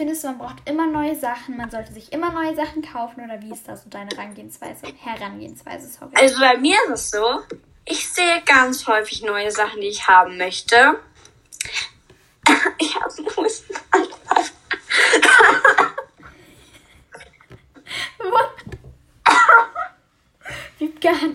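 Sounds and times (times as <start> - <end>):
speech: 0.0 - 11.9, 12.7 - 13.9
person coughing fit: 11.6 - 16.1, 19.3 - 19.9.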